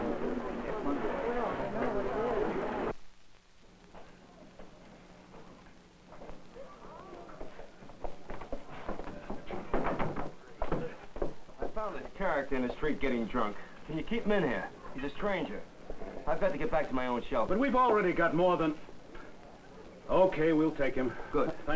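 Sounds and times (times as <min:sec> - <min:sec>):
voices: 0:00.0 - 0:03.0, 0:03.6 - 0:21.7
noise: 0:00.0 - 0:21.7
knocking on an outside door: 0:09.4 - 0:11.4
speech: 0:11.9 - 0:15.7, 0:16.3 - 0:18.9, 0:20.1 - 0:21.7.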